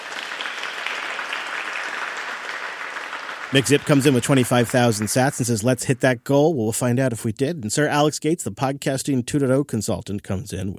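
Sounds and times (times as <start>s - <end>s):
crowd applauding: 0.0s - 5.8s
speech: 3.5s - 10.7s.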